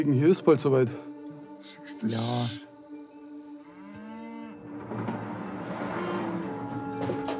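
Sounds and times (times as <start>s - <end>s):
speech: 0.0s - 2.6s
cows mooing: 3.7s - 7.3s
low rumble of the cow herd: 3.9s - 7.0s.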